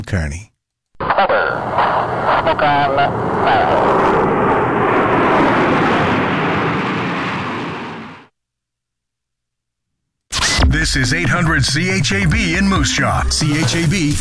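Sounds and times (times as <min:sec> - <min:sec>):
speech: 0:00.1 - 0:00.5, 0:01.2 - 0:04.3, 0:10.7 - 0:14.1
Snowbirds Tudor jet trainer aircraft roaring past overhead at Moose Jaw Canada: 0:01.5 - 0:08.3.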